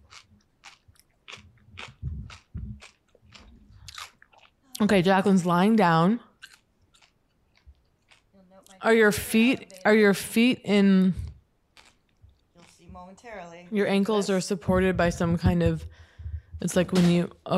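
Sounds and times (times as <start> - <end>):
biting and chewing crunchy food: 0.0 - 5.7, 6.3 - 8.8, 11.7 - 13.0
speech: 4.8 - 6.3, 8.8 - 11.2, 13.1 - 16.0, 16.6 - 17.5.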